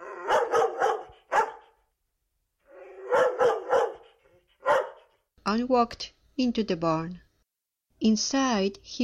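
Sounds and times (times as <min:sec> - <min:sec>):
dog barking: 0:00.0 - 0:01.8, 0:02.8 - 0:05.2
speech: 0:05.5 - 0:07.2, 0:08.0 - 0:09.0.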